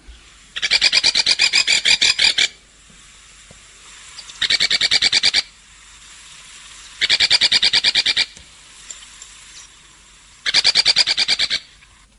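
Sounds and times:
cardinal woodpecker calling in a garden with a dry rasping rattle: 0:00.5 - 0:02.6, 0:04.0 - 0:05.6, 0:06.6 - 0:11.8.

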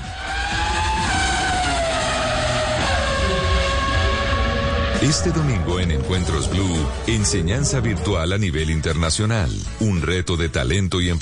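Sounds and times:
faint tire squeal: 0:00.0 - 0:05.8
powerful V8 race car engine roaring: 0:00.0 - 0:09.6
speech: 0:05.0 - 0:11.1.

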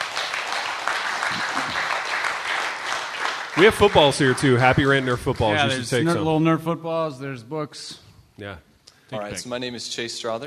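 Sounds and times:
crowd applauding: 0:00.0 - 0:06.0
speech: 0:03.6 - 0:10.4.

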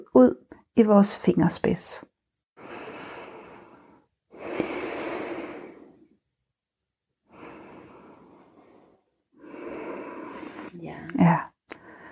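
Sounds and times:
speech: 0:00.0 - 0:02.1
deep breaths in and out during a guided breathing exercise: 0:02.6 - 0:06.2, 0:07.2 - 0:10.8, 0:11.7 - 0:12.0.

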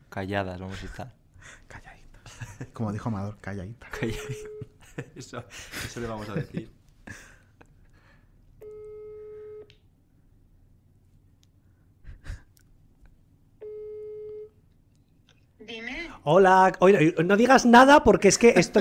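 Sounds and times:
speech: 0:00.2 - 0:01.9, 0:02.6 - 0:07.3, 0:16.2 - 0:18.7
faint breathing: 0:01.4 - 0:02.4, 0:07.0 - 0:08.4
laughter: 0:02.3 - 0:02.8, 0:03.9 - 0:07.4, 0:18.2 - 0:18.7
mobile phone ringback tone: 0:08.6 - 0:09.7, 0:13.6 - 0:14.5.

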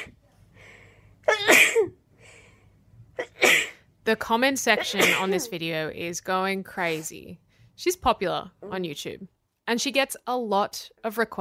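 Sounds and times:
soft breathy inhales: 0:00.5 - 0:01.2, 0:02.1 - 0:02.8
woman sneezing: 0:01.3 - 0:01.9, 0:04.8 - 0:05.5
speech: 0:04.1 - 0:11.3.

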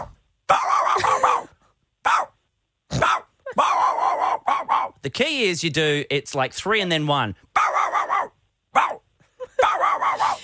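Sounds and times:
person imitating a dog barking: 0:00.0 - 0:02.3, 0:02.9 - 0:05.0, 0:07.6 - 0:10.4
speech: 0:05.0 - 0:07.5.

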